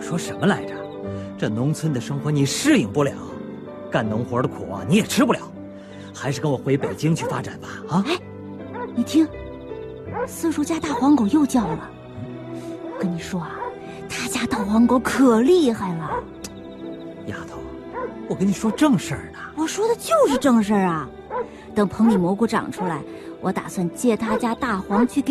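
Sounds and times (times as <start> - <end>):
speech: 0.1 - 5.6, 6.2 - 8.3, 9.0 - 9.4, 10.2 - 12.3, 13.0 - 13.6, 14.4 - 16.4, 18.3 - 25.2
big yellow dog barking at a neighbour's home in the countryside: 6.7 - 7.6, 8.7 - 9.2, 10.1 - 11.9, 12.8 - 13.8, 16.0 - 16.4, 17.9 - 19.0, 21.3 - 23.1, 24.2 - 25.2.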